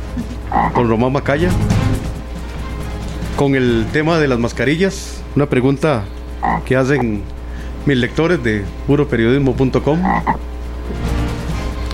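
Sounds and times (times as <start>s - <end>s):
low steady hum: 0.0s - 11.9s
speech: 0.2s - 1.8s, 3.4s - 11.1s
toad croaking: 0.5s - 0.9s, 6.4s - 7.2s, 10.0s - 10.4s.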